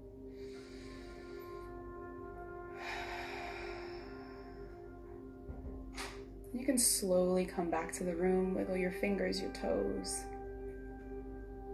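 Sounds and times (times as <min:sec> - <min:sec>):
steady sustained tonal drone: 0:00.0 - 0:11.7
deep breath at the end of a guided meditation: 0:00.1 - 0:05.4
speech: 0:06.5 - 0:10.3.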